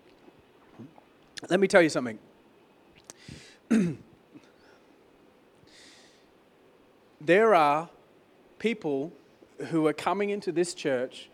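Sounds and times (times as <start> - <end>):
speech: 0.8 - 2.3, 3.7 - 4.0, 7.2 - 8.0, 8.6 - 11.3
loud gravelly cough-like hack: 3.7 - 4.5
person clearing their throat: 3.7 - 4.6.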